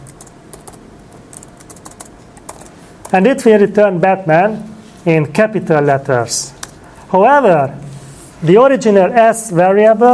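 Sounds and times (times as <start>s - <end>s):
computer keyboard keys clacking while typing code: 0.0s - 3.2s
speech: 3.1s - 10.1s.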